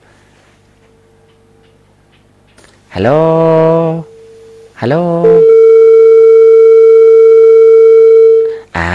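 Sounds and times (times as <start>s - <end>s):
speech: 2.9s - 3.6s, 4.8s - 5.5s
loud steady telephone busy tone after a dropped call: 5.3s - 8.5s.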